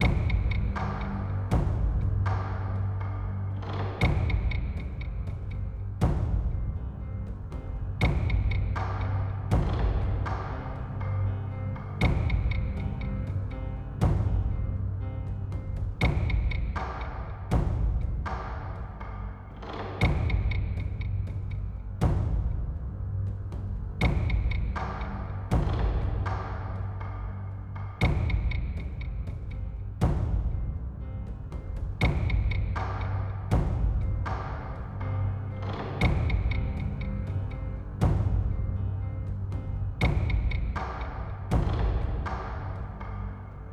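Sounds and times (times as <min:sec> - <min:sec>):
serious ambience loop: 0:00.0 - 0:43.7.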